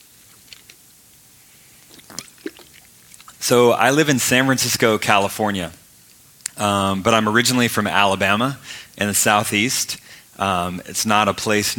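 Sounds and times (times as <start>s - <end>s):
person sipping water: 1.6s - 3.4s
slurping and swallowing: 1.8s - 3.4s
speech: 3.5s - 5.8s, 6.6s - 11.7s.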